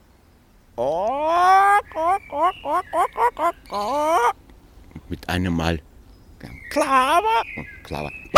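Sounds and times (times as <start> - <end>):
person imitating clucking hen: 0.8 - 4.4, 6.8 - 7.6
speech: 2.6 - 4.4, 5.3 - 8.3.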